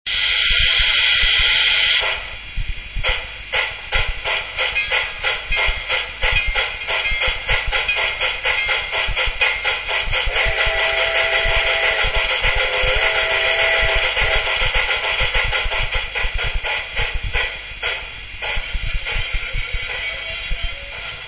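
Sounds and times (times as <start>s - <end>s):
Mikado steam locomotive sound decoder: 0.1s - 21.2s.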